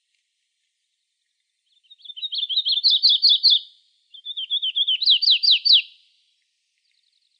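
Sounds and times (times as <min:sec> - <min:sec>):
warbler singing in Arizona: 0:01.7 - 0:06.0.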